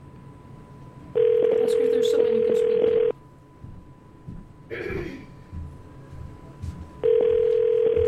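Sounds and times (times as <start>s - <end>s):
telephone ringing unanswered: 1.1s - 3.2s, 7.0s - 8.0s.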